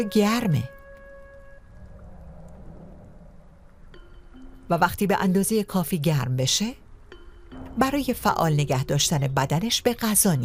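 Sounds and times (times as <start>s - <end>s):
speech: 0.0s - 0.8s, 4.7s - 6.8s, 7.5s - 10.4s
scattered raindrops: 0.6s - 4.7s
steady rain hiss: 1.2s - 4.8s.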